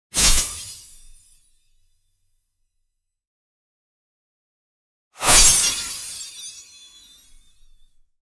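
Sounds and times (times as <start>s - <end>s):
quick precision sword slash attack: 5.2s - 6.4s.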